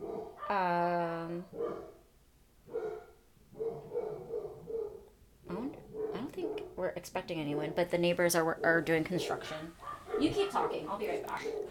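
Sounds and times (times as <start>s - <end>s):
dogs barking: 0.0s - 0.5s, 1.5s - 2.0s, 2.6s - 5.2s, 5.8s - 6.8s, 9.8s - 11.6s
speech: 0.5s - 1.0s, 6.8s - 11.6s.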